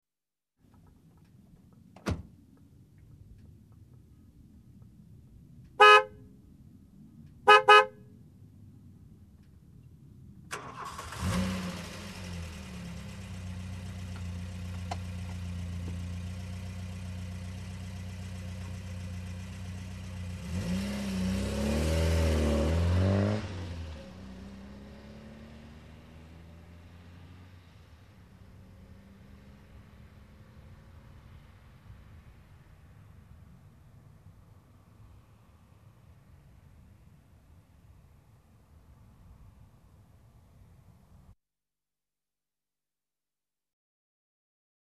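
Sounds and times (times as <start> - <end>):
car door closing: 2.0 - 2.4
car horn honking: 5.8 - 6.2, 7.4 - 8.1
car engine starting: 10.4 - 32.2.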